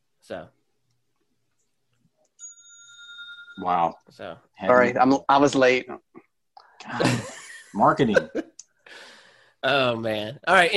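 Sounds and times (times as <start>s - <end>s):
speech: 0.3s - 0.6s, 3.6s - 6.2s, 6.8s - 10.7s
small bell struck: 2.4s - 4.0s.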